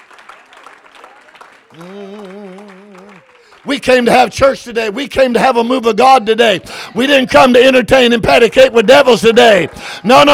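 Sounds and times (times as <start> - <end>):
crowd clapping hands: 0.0 - 5.7, 6.4 - 10.3
speech: 1.7 - 2.7, 3.6 - 10.3
loud sustained voice: 1.7 - 3.4.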